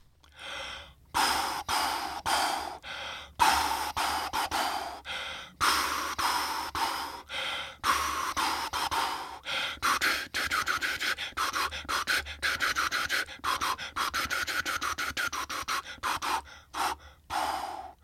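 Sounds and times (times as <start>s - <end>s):
rhythmic breaths blown forcefully as a breath-pattern exercise for brass players: 0.3s - 18.0s.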